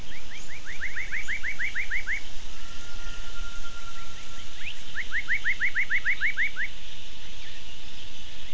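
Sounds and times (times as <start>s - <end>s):
gibbon calling: 0.0s - 6.8s
constant low rumbling background noise: 0.0s - 8.5s.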